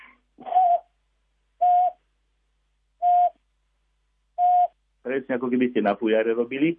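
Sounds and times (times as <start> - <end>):
long-eared owl giving a monotonous hooting call: 0.0 - 0.9, 1.6 - 2.0, 3.0 - 3.4, 4.4 - 4.8
speech: 5.1 - 6.7.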